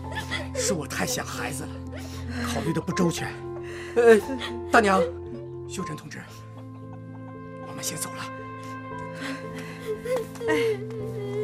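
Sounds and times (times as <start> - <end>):
little girl whimpering and crying: 0.0 - 2.9, 3.9 - 5.6, 9.2 - 11.4
steady tonal background: 0.0 - 11.4
speech: 0.6 - 6.5, 7.8 - 8.4, 10.0 - 11.2.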